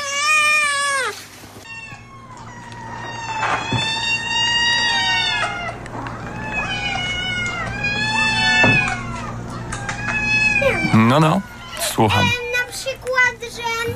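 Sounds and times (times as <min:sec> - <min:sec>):
two cats meowing: 0:00.0 - 0:13.9
low steady hum: 0:01.6 - 0:13.9
speech: 0:11.1 - 0:12.9.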